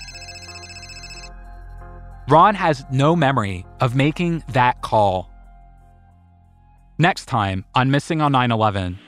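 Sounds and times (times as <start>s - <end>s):
cell phone ringing with bright electronic tone: 0.0s - 1.3s
speech: 2.3s - 5.3s, 7.0s - 9.0s.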